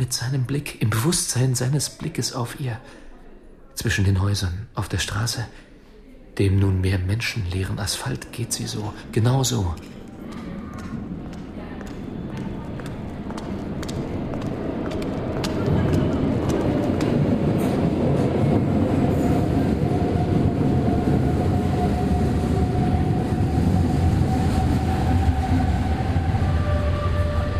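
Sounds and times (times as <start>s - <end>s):
speech: 0.0s - 3.0s, 3.8s - 5.6s, 6.4s - 10.4s
subway train arriving at an underground station: 7.0s - 27.5s.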